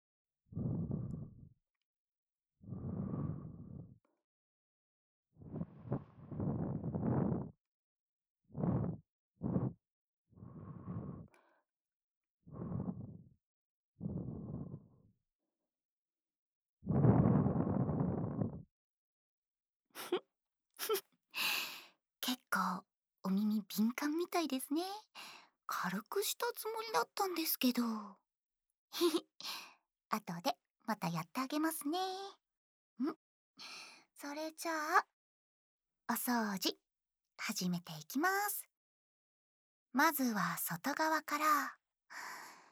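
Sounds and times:
soft warm breaths puffed into the ear: 0.6 - 1.4, 2.7 - 3.9, 5.4 - 7.5, 8.6 - 9.8, 10.4 - 11.4, 12.5 - 13.2, 14.0 - 14.9, 16.9 - 18.6
speech: 20.0 - 21.6, 22.5 - 28.2, 28.9 - 32.4, 33.0 - 35.1, 36.1 - 36.8, 37.4 - 38.7, 39.9 - 42.4.

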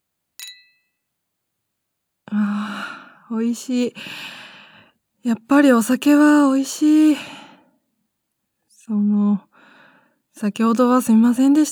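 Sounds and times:
two glasses clinking in a toast: 0.4 - 0.9
speech: 2.3 - 4.4, 5.2 - 7.4, 8.9 - 9.5, 10.4 - 11.7.

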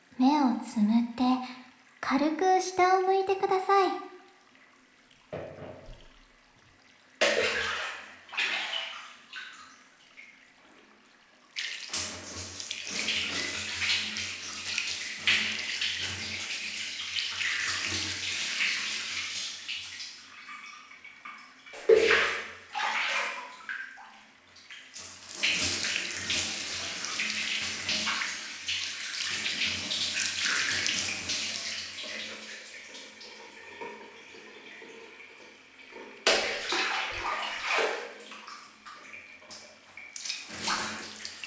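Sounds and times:
speech: 0.2 - 1.2, 2.1 - 4.1
water rinsing shampoo out of hair at a salon: 1.8 - 41.4.

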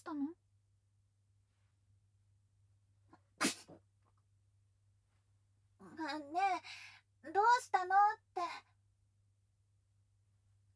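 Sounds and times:
person sneezing on a chilly spring night: 3.4 - 3.8
speech: 7.5 - 8.6.

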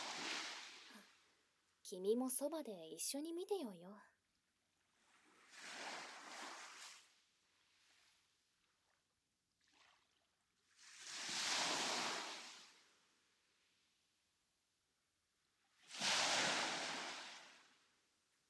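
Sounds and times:
small waves washing onto the shore: 0.0 - 1.0, 11.0 - 12.6, 15.9 - 17.6
speech: 1.9 - 4.1.

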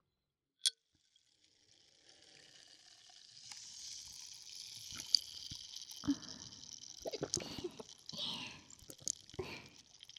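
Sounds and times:
carbonated drink fizzing: 3.3 - 10.1
person gulping a carbonated drink: 7.0 - 9.8.

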